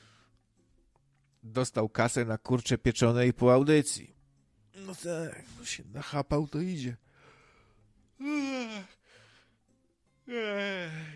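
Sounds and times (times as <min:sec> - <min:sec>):
speech: 0:01.4 - 0:04.2, 0:04.8 - 0:07.0, 0:08.2 - 0:09.0, 0:10.3 - 0:11.1
breathy inhale: 0:07.0 - 0:07.9, 0:09.0 - 0:09.6
person yawning: 0:08.2 - 0:09.0, 0:10.3 - 0:11.1.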